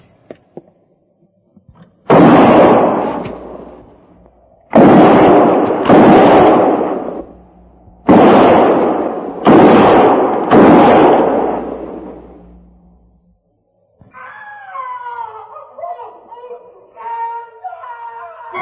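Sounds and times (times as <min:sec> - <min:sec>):
gunshots fired between trees: 0:02.0 - 0:13.0.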